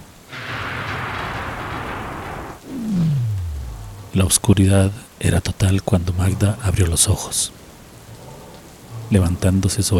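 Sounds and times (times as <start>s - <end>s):
very close thunderclap from a lightning strike during a storm: 0.0s - 4.6s
speech: 4.2s - 7.6s, 9.1s - 9.9s.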